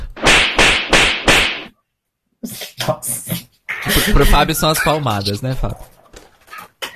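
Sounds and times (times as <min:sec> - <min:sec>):
loud sharp whip cracks with hissing tail: 0:00.1 - 0:01.7
speech: 0:02.9 - 0:05.9.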